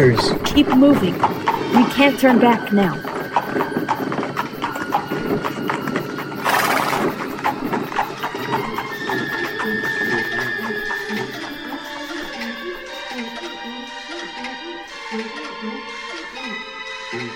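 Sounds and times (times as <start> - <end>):
speech: 0.0 - 3.1
horse hooves clip-clopping: 0.0 - 12.9.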